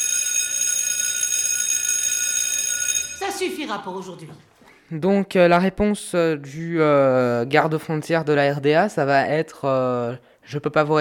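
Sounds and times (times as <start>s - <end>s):
school bell ringing with piercing metallic clang: 0.0s - 4.2s
speech: 3.4s - 10.9s.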